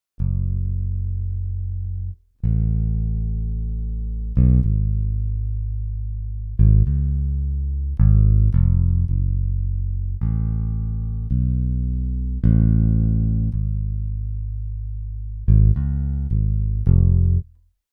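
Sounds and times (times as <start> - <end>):
warm 808 bass: 0.2 - 17.8.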